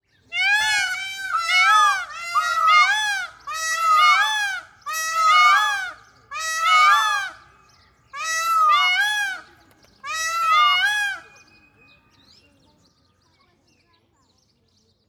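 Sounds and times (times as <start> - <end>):
peacocks calling: 0.3 - 11.7.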